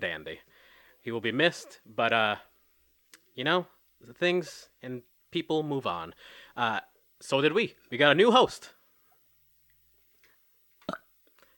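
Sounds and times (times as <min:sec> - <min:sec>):
speech: 0:01.0 - 0:02.5, 0:03.4 - 0:08.8
short loud gravelly burp: 0:10.8 - 0:11.2.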